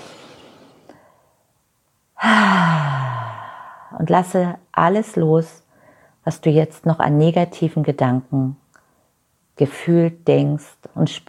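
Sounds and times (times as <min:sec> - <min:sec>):
deep breathing in and out: 0:02.2 - 0:04.0
speech: 0:04.0 - 0:05.6, 0:06.2 - 0:08.6, 0:09.6 - 0:11.2.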